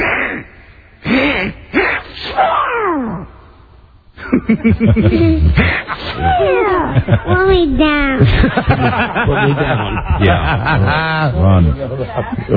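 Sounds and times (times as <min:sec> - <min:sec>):
voice imitating a cartoon duck sneezing: 0:00.0 - 0:03.2
laughter: 0:04.2 - 0:12.5
speech: 0:04.5 - 0:12.5.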